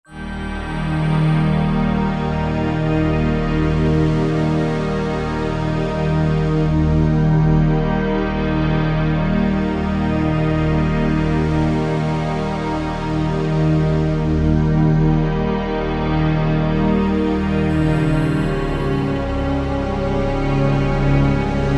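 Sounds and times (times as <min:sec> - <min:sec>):
big synth pad: 0:00.1 - 0:21.7.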